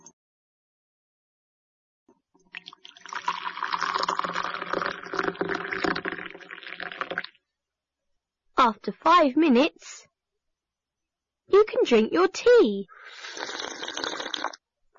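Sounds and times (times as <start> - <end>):
hot water poured into a cup: 2.5 - 7.4, 13.0 - 14.6
speech: 8.6 - 10.0, 11.6 - 13.0.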